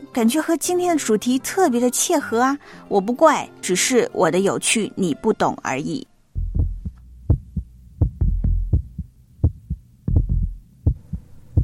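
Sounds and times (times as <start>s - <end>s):
speech: 0.2s - 6.1s
faint low hum: 6.1s - 11.6s
heartbeat of deep paired thumps: 6.4s - 11.6s.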